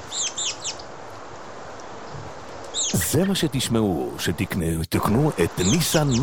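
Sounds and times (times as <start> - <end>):
bright bird chirps outdoors: 0.0 - 0.8, 2.7 - 3.0, 5.6 - 6.2
steady hiss: 0.0 - 6.2
speech: 2.9 - 6.2.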